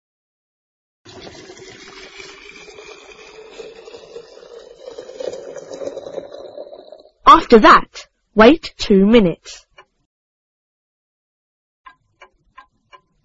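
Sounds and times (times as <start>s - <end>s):
boiling water poured into a teapot: 1.1s - 7.2s
speech: 7.5s - 9.6s.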